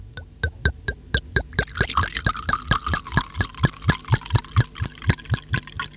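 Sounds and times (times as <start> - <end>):
liquid glugging from a bottle into a glass: 1.2 - 5.9.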